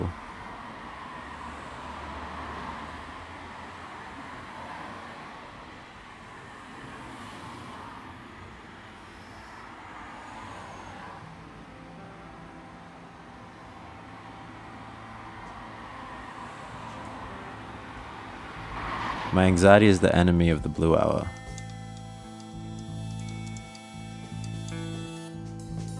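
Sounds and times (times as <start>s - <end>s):
low hum of distant traffic: 8.5s - 25.9s
speech: 19.3s - 21.4s.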